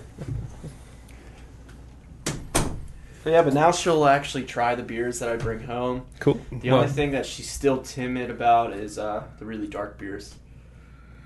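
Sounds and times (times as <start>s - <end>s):
door pushed shut thud: 2.2s - 3.0s
speech: 3.2s - 10.4s.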